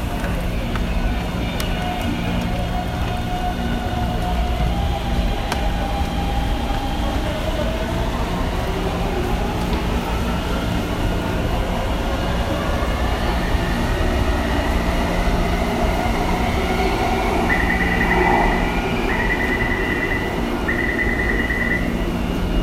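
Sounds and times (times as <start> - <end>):
metro trains rumbling at rush hour: 0.0 - 22.6
rush hour crowd in a metro station: 0.0 - 22.6
tonal whines: 16.2 - 22.0.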